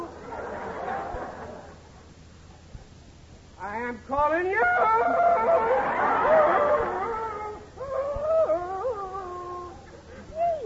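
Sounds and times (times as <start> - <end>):
laughter: 0.0 - 1.9, 5.0 - 10.6
faint noise: 0.0 - 10.6
speech: 4.1 - 5.2
man howling like a wolf: 4.7 - 9.8.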